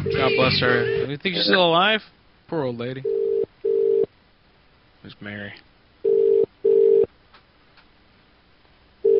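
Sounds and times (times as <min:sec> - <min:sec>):
telephone ringback tone while a call is placed: 0:00.0 - 0:01.1, 0:03.0 - 0:04.1, 0:06.0 - 0:07.1
speech: 0:00.1 - 0:03.3, 0:05.0 - 0:05.7.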